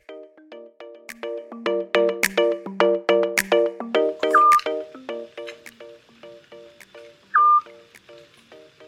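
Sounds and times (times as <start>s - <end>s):
rapid plucked clicking tones: 0.0s - 8.8s
Eurasian scops owl whistled call in Athens, Greece: 4.3s - 4.6s, 7.3s - 7.8s.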